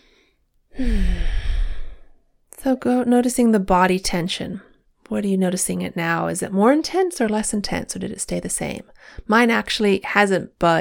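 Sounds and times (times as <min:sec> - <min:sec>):
deep breath drawn in and released with a sigh-like exhale during a relaxation exercise: 0:00.0 - 0:02.2
speech: 0:00.8 - 0:01.2, 0:02.6 - 0:10.8.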